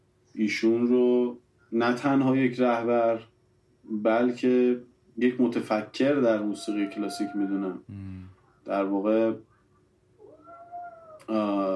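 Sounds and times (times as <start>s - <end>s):
speech: 0.4s - 3.3s, 3.9s - 9.5s, 11.3s - 11.7s
cat meowing indoors: 6.2s - 7.8s, 10.2s - 11.3s.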